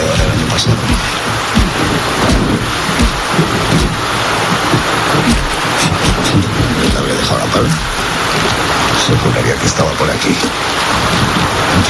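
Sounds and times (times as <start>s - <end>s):
low thumps: 0.0s - 9.4s
dense rain hissing: 0.0s - 11.8s
gusty wind: 0.0s - 11.8s
speech: 9.7s - 11.2s.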